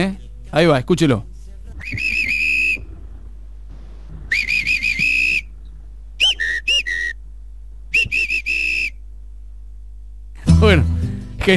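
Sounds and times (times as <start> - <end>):
speech: 0.0 - 2.2, 10.6 - 11.5
low hum: 0.0 - 11.5
person whistling through the mouth imitating a referee's whistle: 1.8 - 2.9, 4.3 - 5.5, 6.2 - 7.2, 7.9 - 9.0.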